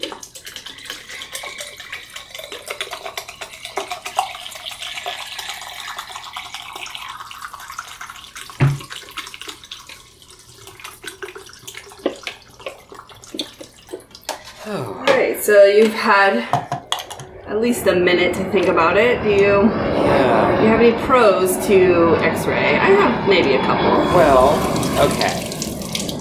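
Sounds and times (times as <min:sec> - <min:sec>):
fixer chemical poured into a developing tank: 0:00.0 - 0:14.6, 0:24.4 - 0:26.2
speech: 0:15.5 - 0:16.6, 0:17.6 - 0:25.4.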